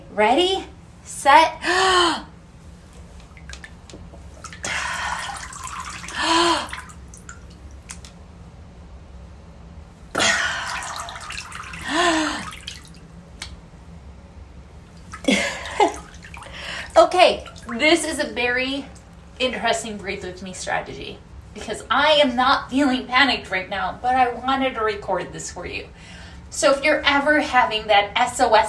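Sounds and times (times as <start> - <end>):
speech: 0.2 - 2.3, 18.3 - 28.6
water sloshing as a face submerges and resurfaces: 2.6 - 8.2, 10.2 - 13.6, 14.8 - 19.2.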